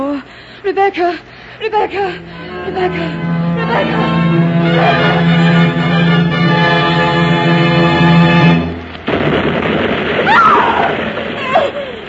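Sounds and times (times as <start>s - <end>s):
speech: 0.2s - 5.6s
sustained tonal drone: 1.7s - 9.0s
rumbling, crackling noise of bursting distress rockets: 1.8s - 12.0s
distress rockets exploding over a bay: 8.8s - 12.0s.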